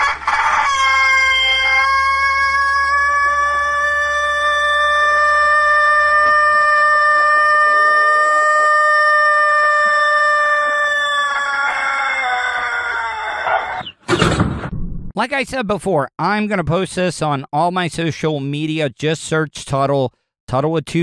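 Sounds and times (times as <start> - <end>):
rooster giving its morning wake-up crow: 0.0 - 13.9
speech: 15.2 - 21.0.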